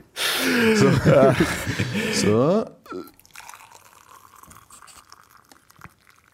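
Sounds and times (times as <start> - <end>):
laughter: 0.4 - 2.6
speech: 0.4 - 3.2
boiling water poured into a teacup: 3.1 - 6.3.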